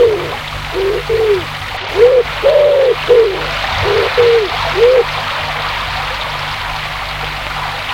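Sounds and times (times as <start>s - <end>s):
dove or pigeon cooing: 0.0s - 5.1s
river flowing past its bank: 0.0s - 7.9s.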